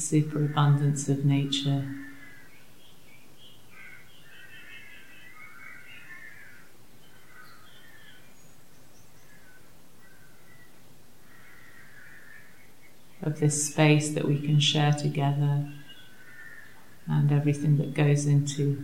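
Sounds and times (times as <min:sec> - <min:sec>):
speech: 0:00.0 - 0:02.1, 0:13.2 - 0:15.8, 0:17.1 - 0:18.8
low hiss: 0:00.0 - 0:18.8
crows cawing outside: 0:01.9 - 0:02.7, 0:03.7 - 0:08.1, 0:11.2 - 0:12.7, 0:16.0 - 0:17.1.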